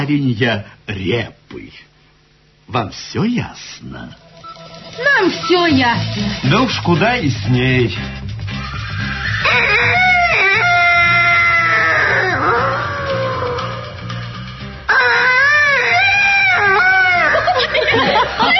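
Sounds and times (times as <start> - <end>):
speech: 0.0 - 1.9, 2.7 - 4.2, 5.0 - 8.3, 9.0 - 10.1
rooster crowing: 8.9 - 13.9, 14.9 - 17.7
laughter: 17.0 - 18.5.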